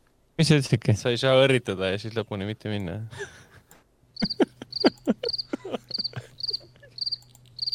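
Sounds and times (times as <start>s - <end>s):
faint low hum: 0.0s - 7.7s
speech: 0.4s - 3.4s, 4.2s - 4.5s
laughter: 4.2s - 7.0s
crickets chirping with bright trilling pulses: 4.2s - 7.7s.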